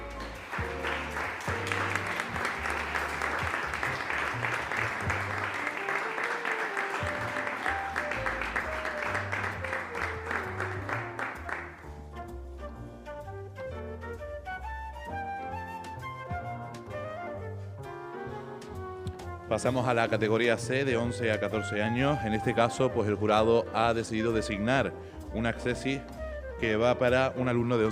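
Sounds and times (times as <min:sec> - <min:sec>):
crowd applauding for a prize winner: 0:00.0 - 0:12.0
music: 0:00.0 - 0:27.9
speech: 0:19.5 - 0:27.9.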